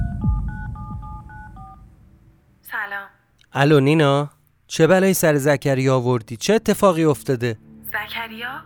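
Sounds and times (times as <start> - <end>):
mobile phone ringing tone: 0.0 - 2.0
low rumble: 0.0 - 2.4
speech: 2.8 - 8.6.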